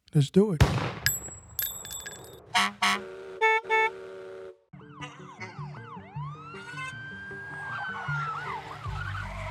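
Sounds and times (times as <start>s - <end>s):
speech: 0.1s - 1.0s
bell-like tones: 1.1s - 2.4s
bus horn honking: 2.5s - 4.6s
siren wailing: 4.8s - 9.4s.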